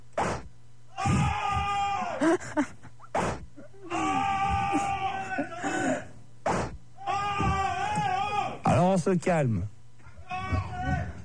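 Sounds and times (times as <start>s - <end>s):
whip-like cracks: 0.2s - 0.5s, 6.4s - 6.8s
people screaming and groaning in pain: 0.9s - 2.3s, 3.8s - 6.1s, 7.0s - 8.8s, 10.2s - 11.2s
speech: 2.2s - 2.8s, 9.0s - 9.7s.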